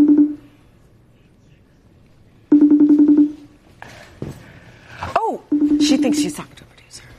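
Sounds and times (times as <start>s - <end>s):
telephone ringback tone purring through the line: 0.0s - 0.6s, 2.5s - 3.5s, 5.5s - 6.3s
speech: 6.0s - 6.7s.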